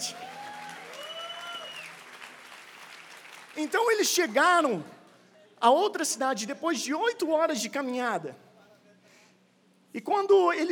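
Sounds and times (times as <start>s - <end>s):
audience applause: 0.0s - 3.8s
speech: 3.6s - 5.0s, 5.6s - 8.4s, 9.9s - 10.7s.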